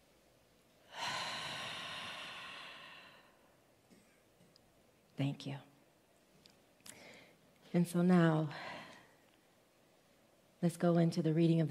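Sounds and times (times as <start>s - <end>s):
single deep slow exhale: 0.9s - 3.5s
speech: 5.2s - 5.7s, 7.7s - 8.7s, 10.6s - 11.6s.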